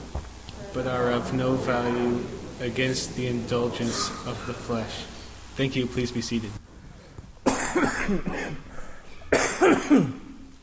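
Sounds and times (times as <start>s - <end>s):
speech: 0.7s - 6.7s, 7.8s - 8.7s, 9.6s - 10.2s
throat clearing: 3.8s - 4.6s, 7.5s - 10.4s
audience members coughing in a room: 3.8s - 4.8s, 7.4s - 10.4s.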